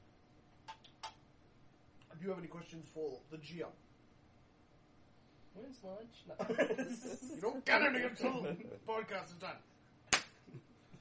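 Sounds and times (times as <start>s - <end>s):
speech: 2.2s - 3.9s, 5.6s - 9.7s
laughter: 6.4s - 8.9s
hand slapping against a knee: 10.1s - 10.4s.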